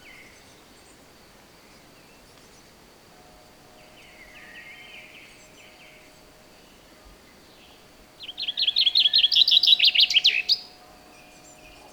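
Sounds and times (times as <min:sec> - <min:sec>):
Common chaffinch song, Fringilla coelebs: 0:00.0 - 0:11.9.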